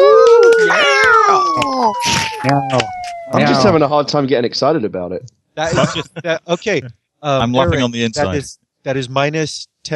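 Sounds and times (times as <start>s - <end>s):
person imitating cat meowing: 0.0s - 3.7s
speech: 2.4s - 9.9s
laughter: 5.6s - 8.5s.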